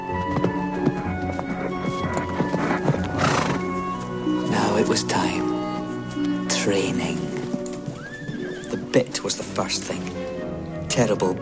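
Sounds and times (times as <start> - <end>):
hoofbeats of horses and a black colt cantering over grassland: 0.0 - 9.5
horses neighing and whinnying: 0.0 - 10.4
speech: 4.9 - 5.5, 6.6 - 7.2, 9.0 - 10.4, 11.0 - 11.4.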